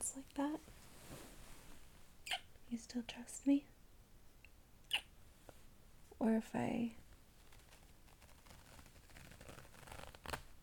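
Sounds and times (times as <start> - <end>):
speech: 0.1 - 1.2, 2.7 - 3.8, 6.2 - 7.0
zipper sliding down: 7.7 - 10.4.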